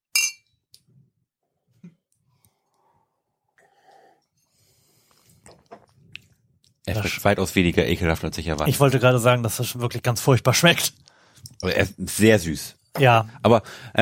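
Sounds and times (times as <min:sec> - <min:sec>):
two drinking glasses clinking in a toast: 0:00.1 - 0:00.5
person breathing: 0:02.3 - 0:05.4, 0:11.1 - 0:11.5, 0:13.3 - 0:13.9
speech: 0:06.9 - 0:11.0, 0:11.6 - 0:13.9.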